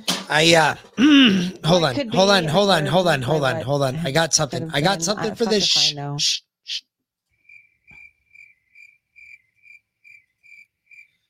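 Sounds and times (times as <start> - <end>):
speech: 0.3 - 6.9
laughter: 1.0 - 6.0
crickets chirping: 7.4 - 11.2.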